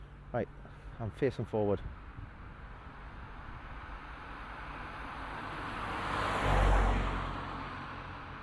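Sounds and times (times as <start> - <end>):
speech: 0.3 - 2.0
car driving past on a road: 3.6 - 8.4.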